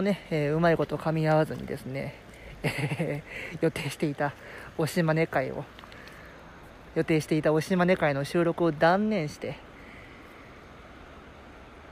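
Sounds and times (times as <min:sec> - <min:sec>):
speech: 0:00.0 - 0:05.8, 0:06.9 - 0:09.7
flowing river water: 0:00.0 - 0:11.9
laughter: 0:02.6 - 0:03.4.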